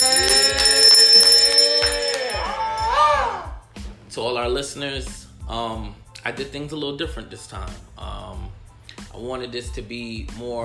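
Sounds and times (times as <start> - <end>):
hand bell being rung: 0.0 - 2.8
speech: 4.2 - 8.6, 9.2 - 10.6.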